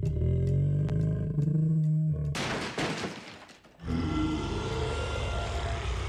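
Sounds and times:
bears growling and roaring: 0:00.0 - 0:02.4, 0:03.8 - 0:06.0.

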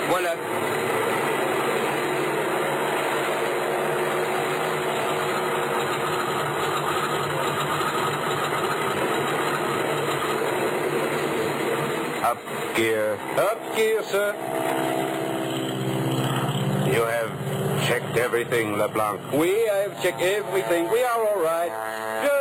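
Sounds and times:
small passenger plane engine running before takeoff: 0:00.0 - 0:22.3
speech: 0:00.2 - 0:00.6, 0:12.8 - 0:15.0, 0:17.9 - 0:22.3.

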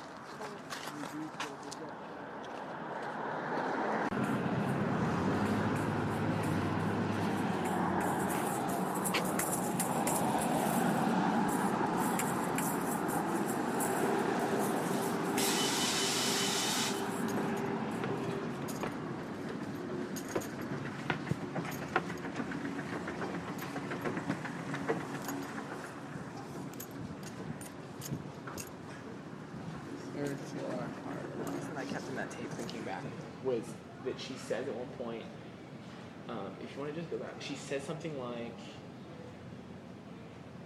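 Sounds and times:
bus engine rumble and road roar driving past a stop: 0:02.0 - 0:36.6
brief hiss: 0:15.4 - 0:17.0
speech: 0:34.2 - 0:35.3, 0:36.6 - 0:38.8.

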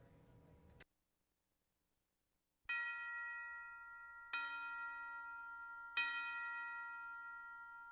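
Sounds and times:
resonant bell chimes opening a Christmas song: 0:02.6 - 0:07.8.

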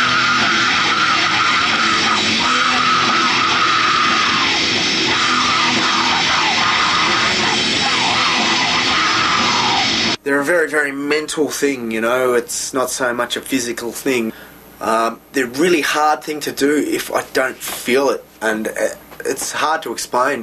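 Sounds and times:
harsh screamed vocals in a song chorus: 0:00.0 - 0:10.2
loud dense wall of distorted instruments: 0:00.0 - 0:10.2
speech: 0:10.4 - 0:20.4.

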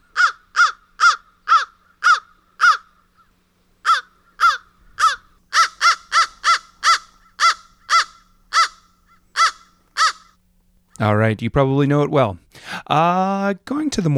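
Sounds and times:
American crow cawing: 0:00.0 - 0:10.4
speech: 0:11.0 - 0:14.1.

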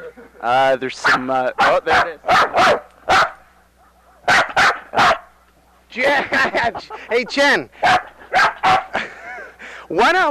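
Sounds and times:
laughter: 0:00.0 - 0:00.4, 0:03.7 - 0:09.8
speech: 0:00.4 - 0:02.8, 0:06.0 - 0:08.0, 0:09.9 - 0:10.2
dog barking excitedly beside a microphone: 0:01.0 - 0:05.9, 0:07.8 - 0:09.0.

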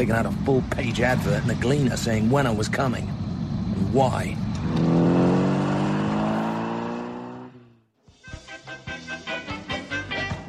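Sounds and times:
speech: 0:00.0 - 0:03.2, 0:03.8 - 0:05.0
taxi engine droning: 0:00.0 - 0:07.9.

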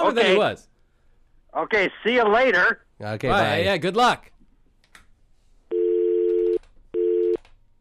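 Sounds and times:
speech: 0:00.1 - 0:00.7, 0:01.5 - 0:04.3
steady electronic telephone tones: 0:05.7 - 0:07.4.

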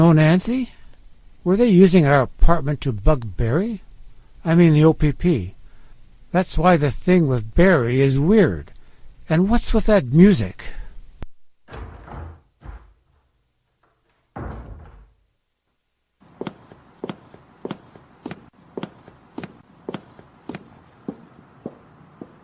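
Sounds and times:
speech: 0:00.0 - 0:00.8, 0:01.4 - 0:03.8, 0:04.4 - 0:05.6, 0:06.3 - 0:10.8
woman's footsteps clicking on a hard hallway floor: 0:11.7 - 0:15.1, 0:16.2 - 0:22.4
thuds and rumbles: 0:11.7 - 0:15.3.

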